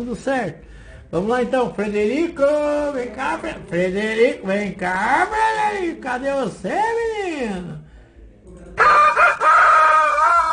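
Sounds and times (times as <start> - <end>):
speech: 0.0 - 7.8
rooster crowing: 8.8 - 10.5.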